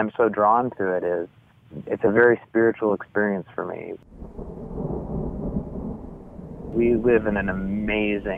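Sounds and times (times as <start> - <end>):
speech: 0.0 - 4.9, 6.7 - 8.3
faint rain hissing: 0.0 - 8.3
deep continuous rumble of thunder in a storm: 4.0 - 8.3.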